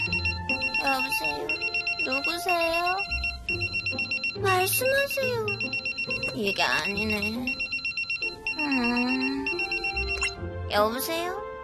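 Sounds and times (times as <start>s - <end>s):
phone ringtone with pulsing electronic trill and melodic tone: 0.0s - 10.4s
speech: 0.8s - 7.6s, 8.6s - 9.7s, 10.7s - 11.4s.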